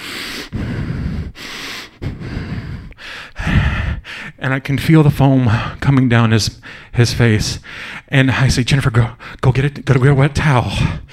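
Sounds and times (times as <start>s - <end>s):
person imitating hard breathing through the nose: 0.0s - 4.4s, 6.6s - 7.0s, 7.6s - 8.1s, 10.8s - 11.1s
speech: 4.4s - 11.1s.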